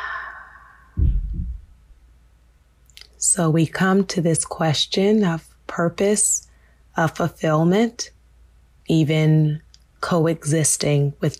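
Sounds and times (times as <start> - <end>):
exhale out through the mouth during a guided breathing exercise: 0.0 - 1.0
speech: 3.3 - 8.2, 8.9 - 11.3.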